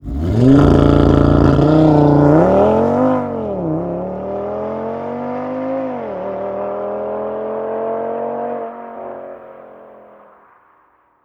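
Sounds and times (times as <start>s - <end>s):
Audi RS3 with ASPP driving off fast: 0.0s - 10.9s.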